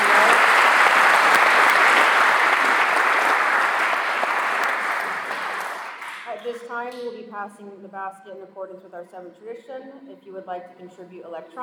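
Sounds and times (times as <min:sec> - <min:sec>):
audience applause for the speakers: 0:00.0 - 0:06.6
speech: 0:06.8 - 0:11.6.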